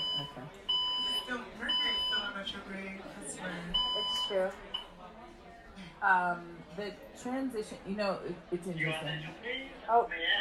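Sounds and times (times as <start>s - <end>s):
building fire alarm in high-pitched electronic beeps: 0.0s - 2.4s, 3.8s - 4.9s
speech: 3.4s - 4.7s, 6.0s - 10.3s.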